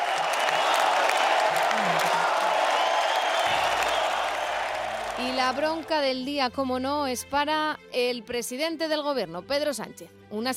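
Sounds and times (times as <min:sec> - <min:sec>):
faint scattered voices and cheers: 0:00.0 - 0:06.0
large bullring crowd applauding in an ovation: 0:00.0 - 0:06.2
speech: 0:05.2 - 0:10.5.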